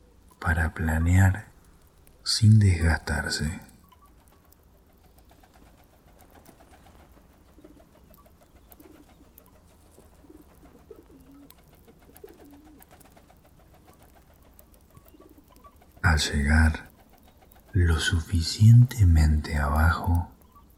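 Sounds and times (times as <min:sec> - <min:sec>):
speech: 0:00.4 - 0:01.5, 0:02.3 - 0:03.7, 0:16.2 - 0:16.9, 0:17.8 - 0:20.3
pigeons cooing: 0:02.0 - 0:20.7.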